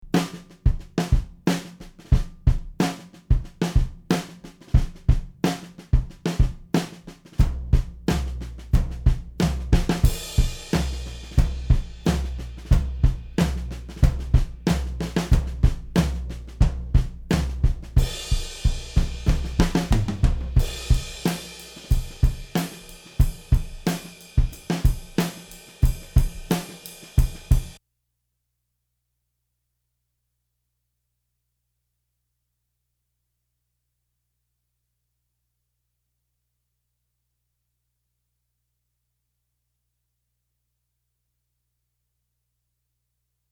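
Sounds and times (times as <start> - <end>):
distorted snare drum: 0.0 - 27.8.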